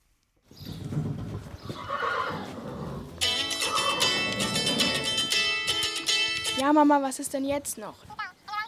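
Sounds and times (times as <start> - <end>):
horse hooves clopping: 0.4 - 8.6
horse with a rider neighing at the stable door: 1.7 - 5.2
bright high tonal phone ringtone: 3.2 - 6.6
speech: 6.6 - 8.2.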